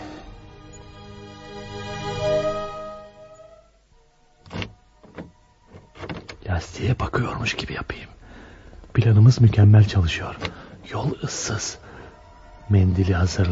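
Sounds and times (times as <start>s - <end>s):
car door clicking open and thumping shut as someone gets out: 4.4s - 6.5s, 10.2s - 10.9s
speech: 6.6s - 8.2s, 9.0s - 11.8s, 12.7s - 13.5s.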